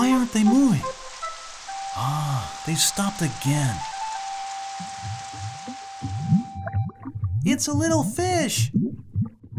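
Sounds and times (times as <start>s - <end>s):
steady rain during a drive toward Taipei: 0.0s - 6.6s
speech: 0.3s - 1.0s, 2.0s - 4.0s, 7.4s - 9.1s.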